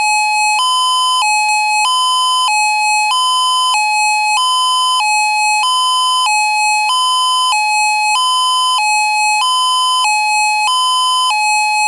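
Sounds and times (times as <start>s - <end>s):
alternate steady outdoor warning siren from a speaker array: 0.0s - 11.8s.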